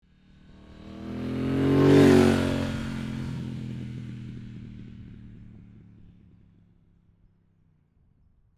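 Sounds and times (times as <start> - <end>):
motorbike passing by at medium speed: 0.1 - 6.3.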